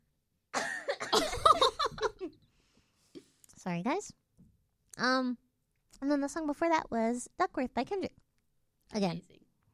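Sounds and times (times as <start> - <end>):
person coughing: 0.5 - 2.3
speech: 3.7 - 4.2, 5.0 - 5.4, 6.0 - 8.1, 9.0 - 9.4.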